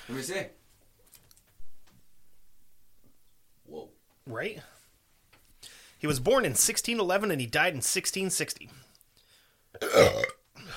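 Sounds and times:
speech: 0:00.1 - 0:00.6, 0:03.7 - 0:04.8, 0:06.0 - 0:08.9, 0:09.8 - 0:10.3
person burping: 0:09.7 - 0:10.7.

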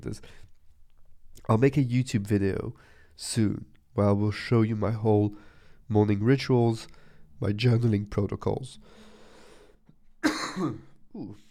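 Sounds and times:
speech: 0:00.0 - 0:00.5, 0:01.5 - 0:09.1, 0:10.3 - 0:11.4
harsh dry cough: 0:10.2 - 0:11.3
throat-clearing rasp: 0:10.2 - 0:11.4.

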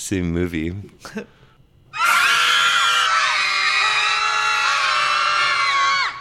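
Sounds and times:
speech: 0:00.0 - 0:01.4
many voices screaming together in a film scene: 0:01.9 - 0:06.1.

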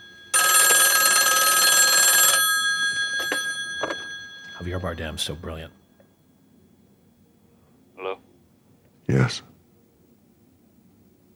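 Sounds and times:
old-fashioned heavy mechanical telephone bell ringing: 0:00.0 - 0:05.8
speech: 0:04.6 - 0:05.8, 0:09.2 - 0:09.5.

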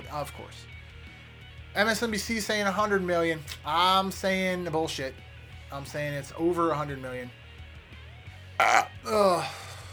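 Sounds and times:
speech: 0:00.1 - 0:00.8, 0:01.7 - 0:07.4, 0:08.6 - 0:09.6
loud croaky burp: 0:08.6 - 0:09.8.

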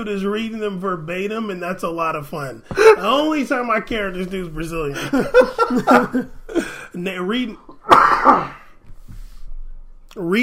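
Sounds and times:
speech: 0:00.0 - 0:07.6, 0:08.2 - 0:08.6, 0:10.2 - 0:10.4
laughter: 0:02.8 - 0:03.2, 0:04.9 - 0:06.8
hard coughing fit: 0:07.8 - 0:08.7.

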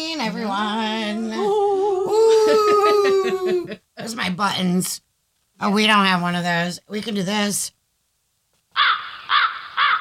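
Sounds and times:
speech: 0:00.0 - 0:01.6, 0:02.5 - 0:07.8
laughter: 0:01.4 - 0:03.8
crow cawing: 0:08.7 - 0:10.0.

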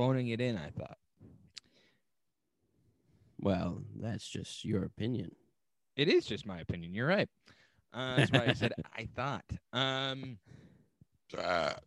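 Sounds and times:
speech: 0:00.0 - 0:01.0, 0:03.4 - 0:05.4, 0:06.0 - 0:10.6, 0:11.3 - 0:11.8
loud low throaty burp into a microphone: 0:11.3 - 0:11.8.

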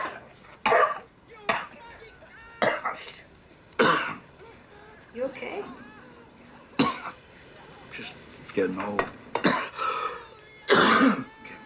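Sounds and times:
harsh broadband coughs: 0:00.6 - 0:01.7, 0:03.8 - 0:04.2, 0:09.4 - 0:09.8, 0:10.7 - 0:11.3
speech: 0:05.2 - 0:05.9, 0:08.0 - 0:09.2.

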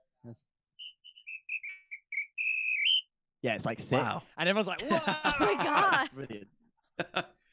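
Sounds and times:
speech: 0:00.2 - 0:01.0, 0:03.4 - 0:07.3
shrill whistle blasts: 0:00.8 - 0:03.1
laughter: 0:04.6 - 0:06.4, 0:07.0 - 0:07.3.

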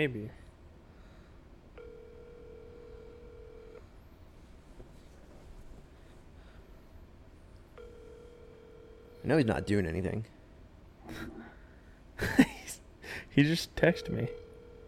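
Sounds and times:
speech: 0:00.0 - 0:00.4, 0:09.2 - 0:10.4, 0:11.1 - 0:11.4, 0:13.4 - 0:14.4
phone ringback tone during outgoing call: 0:01.8 - 0:03.8, 0:07.8 - 0:09.9, 0:13.8 - 0:14.8.

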